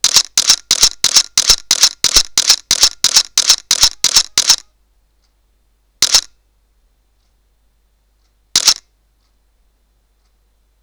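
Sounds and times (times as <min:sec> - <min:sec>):
Sony Alpha DSLR-A850 camera shutter continuous RAW shooting: 0:00.0 - 0:04.7, 0:06.0 - 0:06.4, 0:08.5 - 0:08.9.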